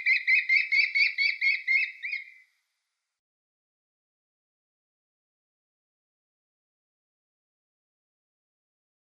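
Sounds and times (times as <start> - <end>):
American kestrel klee calls: 0.0 - 2.4.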